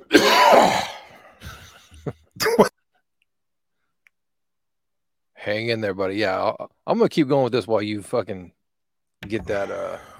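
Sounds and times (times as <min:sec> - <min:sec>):
person coughing to clear something stuck in the throat: 0:00.0 - 0:01.7, 0:02.4 - 0:02.7
speech: 0:05.5 - 0:08.6, 0:09.2 - 0:10.1.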